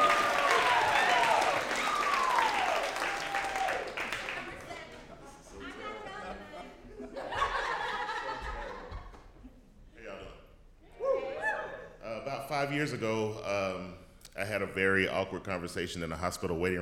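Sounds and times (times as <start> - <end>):
whoops and cheers: 0.0 - 4.1, 10.9 - 11.9
large audience clapping: 0.0 - 5.2
laughter: 4.4 - 9.7
speech: 12.6 - 16.8.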